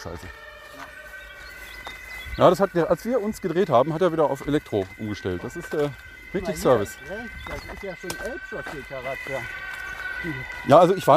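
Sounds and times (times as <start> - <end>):
speech: 0.0 - 1.0, 2.4 - 11.1
emergency vehicle two-tone siren wailing: 0.0 - 11.1
low road rumble of a moving car: 0.0 - 11.1.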